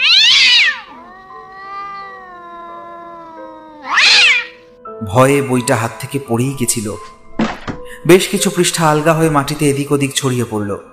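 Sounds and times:
black cat yowling harshly: 0.0s - 4.6s
speech: 5.1s - 7.1s, 8.0s - 10.9s.

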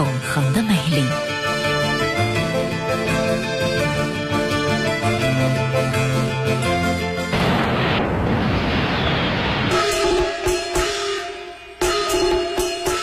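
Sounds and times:
loud music: 1.1s - 13.0s
fireworks and firecrackers bursting for a Spring Festival celebration: 7.3s - 11.1s.

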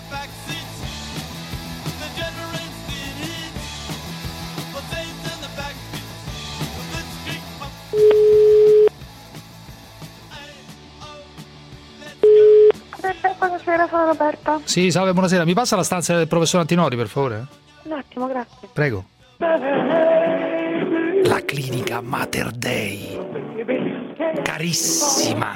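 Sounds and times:
telephone line tone from a call to a clinic: 8.0s - 8.9s, 12.2s - 12.8s
speech: 13.9s - 20.4s, 21.2s - 25.5s.

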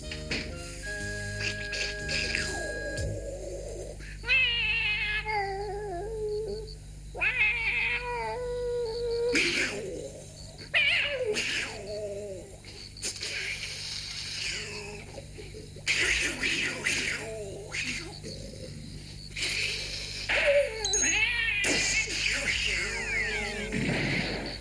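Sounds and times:
continuous low hum: 0.0s - 24.5s
cat meowing and caterwauling: 1.4s - 10.0s, 10.6s - 12.5s, 20.3s - 22.0s, 22.6s - 23.8s.

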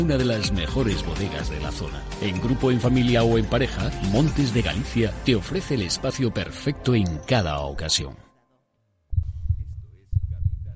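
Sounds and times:
speech: 0.0s - 8.3s
heartbeat sound effect in a radio promo: 9.1s - 10.7s.

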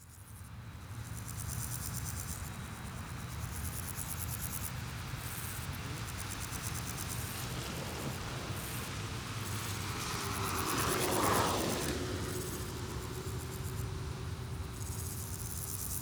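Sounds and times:
grasshoppers stridulating on a sunny day in Auderghem Brussels Belgium: 0.2s - 16.0s
continuous low rumbling road traffic noise in Auderghem Brussels Belgium: 5.1s - 16.0s.

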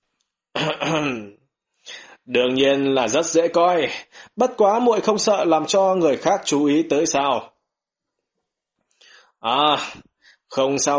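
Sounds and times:
speech: 0.6s - 1.3s, 2.3s - 7.5s, 9.4s - 10.9s
narrator clearing throat while reading a fantasy story: 0.6s - 2.0s.

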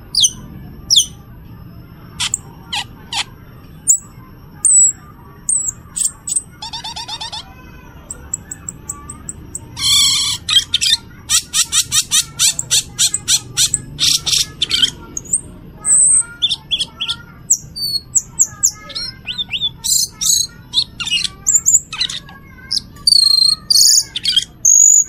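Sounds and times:
Cucak keling singing fast trills, scratchy bursts and chips: 0.1s - 1.2s, 3.9s - 25.0s.

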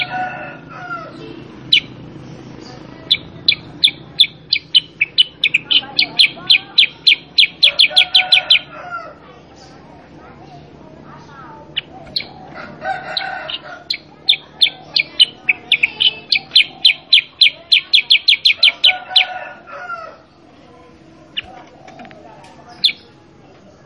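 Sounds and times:
sooty-headed bulbul cage bird singing energetic training song: 0.0s - 8.8s, 10.5s - 19.6s, 22.6s - 23.2s.

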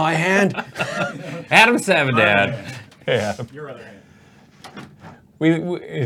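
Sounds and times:
laughter: 0.0s - 3.9s
speech: 0.0s - 4.0s, 4.7s - 6.0s
soft knocks and shuffles: 2.3s - 5.3s.

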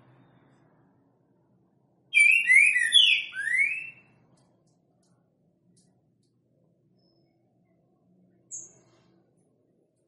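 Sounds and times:
green-winged saltator loud whistled song: 2.1s - 4.1s.

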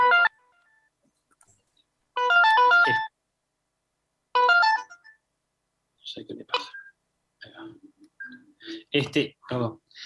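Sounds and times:
mobile phone melodic electronic ringtone: 0.0s - 0.5s, 2.2s - 3.1s, 4.4s - 5.2s
speech: 2.9s - 3.1s, 6.2s - 6.7s, 9.0s - 9.8s.

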